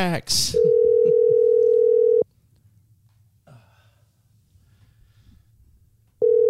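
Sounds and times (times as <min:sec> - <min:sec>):
outgoing phone call ringing tone: 0:00.6 - 0:02.2, 0:06.2 - 0:06.4
faint breath: 0:03.5 - 0:05.7.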